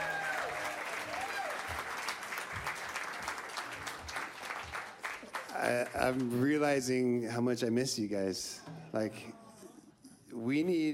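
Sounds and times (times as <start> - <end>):
concert crowd cheering and shouting: 0.0 - 1.8
concert crowd applauding: 0.0 - 6.4
speech: 5.7 - 9.4, 10.4 - 10.9.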